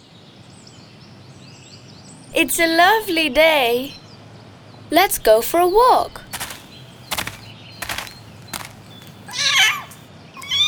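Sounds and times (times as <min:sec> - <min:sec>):
speech: 0:02.3 - 0:04.0, 0:04.9 - 0:06.2
kitten giving a high thin meow: 0:09.3 - 0:10.6.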